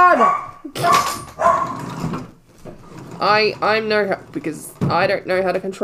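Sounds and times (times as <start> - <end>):
dog yipping and whimpering: 0.2 - 1.8
dog barking: 0.2 - 1.9
speech: 3.2 - 5.8.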